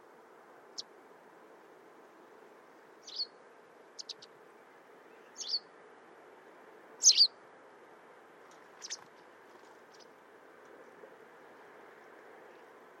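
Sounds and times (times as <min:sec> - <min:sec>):
low background hiss: 0:00.0 - 0:12.9
White wagtail short sharp high chirps: 0:03.0 - 0:03.4, 0:04.0 - 0:04.3, 0:05.1 - 0:05.7, 0:07.0 - 0:07.3, 0:08.8 - 0:09.0.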